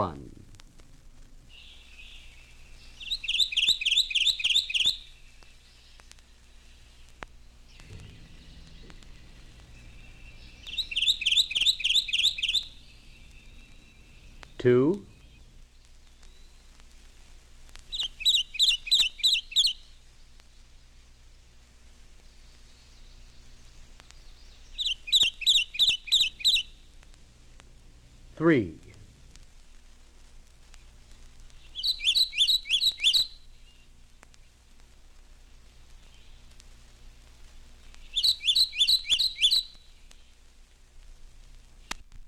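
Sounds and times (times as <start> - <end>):
speech: 0.0 - 0.3, 14.6 - 15.1, 28.4 - 28.8
Kentucky warbler singing rolling repeated phrases: 1.5 - 16.7, 17.9 - 19.9, 22.2 - 26.8, 31.6 - 33.9, 38.0 - 40.3
brief sweeping bird call: 1.5 - 16.8, 17.9 - 20.0, 22.3 - 26.8, 31.6 - 34.6, 38.0 - 40.4.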